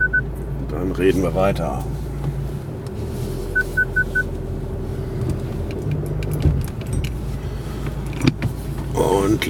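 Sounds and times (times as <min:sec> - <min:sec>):
short electronic beeps: 0:00.0 - 0:00.2, 0:03.6 - 0:04.3
car engine rumble pulling out of a driveway: 0:00.0 - 0:09.4
speech: 0:00.8 - 0:02.0, 0:09.0 - 0:09.4
light jangling: 0:05.7 - 0:07.4.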